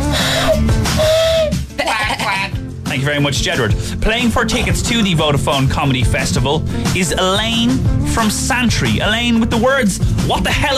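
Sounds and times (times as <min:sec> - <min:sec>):
human voices imitating an exotic barn owl mating call: 0:00.2 - 0:01.6
speech: 0:03.0 - 0:10.7.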